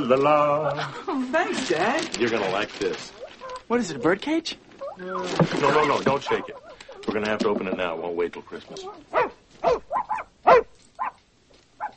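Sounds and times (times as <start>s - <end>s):
speech: 0.0s - 10.7s
puppy yipping and barking: 6.1s - 7.0s, 8.6s - 11.2s.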